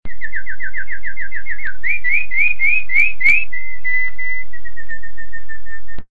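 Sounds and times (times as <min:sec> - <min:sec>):
yellow bird: 0:00.1 - 0:06.0.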